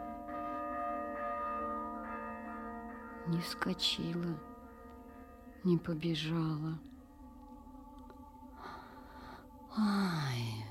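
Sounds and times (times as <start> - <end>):
church alarm bell tolling: 0.0 - 7.5
speech: 3.3 - 4.5, 5.6 - 6.9, 9.8 - 10.6.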